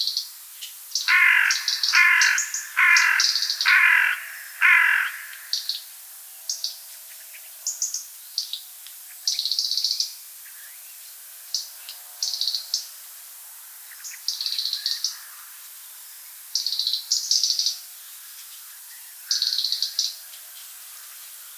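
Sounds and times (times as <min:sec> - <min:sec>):
European robin singing: 0:01.0 - 0:05.8.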